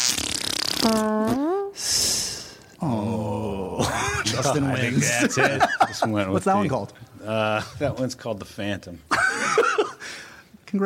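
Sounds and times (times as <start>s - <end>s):
fart noises made with the mouth: 0.0s - 1.8s
speech: 0.8s - 1.1s, 4.4s - 9.2s
laughter: 3.7s - 6.4s, 9.1s - 10.0s.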